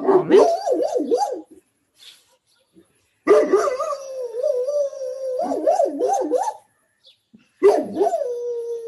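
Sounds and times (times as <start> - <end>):
Great Dane and street dogs barking and yowling outside around the corner: 0.0 - 1.6, 3.3 - 6.7, 7.6 - 8.8.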